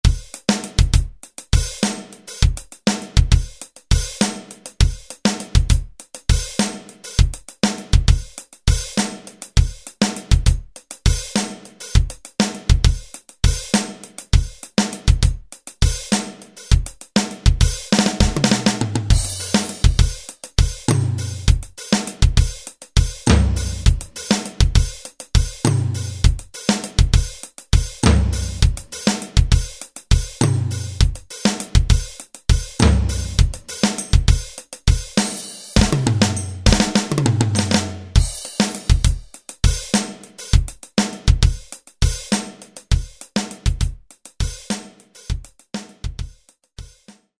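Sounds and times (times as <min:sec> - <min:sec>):
Alesis SR-16 drum machine jazz rock preset pattern: 0:00.0 - 0:47.2.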